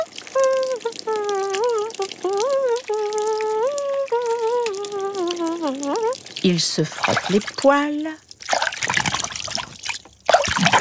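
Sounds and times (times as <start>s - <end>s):
person humming: 0.0s - 6.2s, 10.5s - 10.7s
shower water running in a bathroom: 0.0s - 10.7s
speech: 6.4s - 8.2s.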